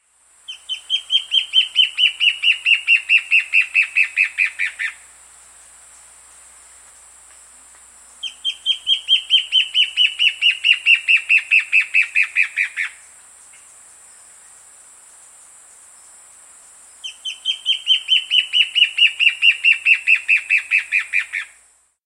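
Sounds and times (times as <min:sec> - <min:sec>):
Ash-breasted antbird calling: 0:00.5 - 0:05.1, 0:08.1 - 0:14.6, 0:16.9 - 0:21.6.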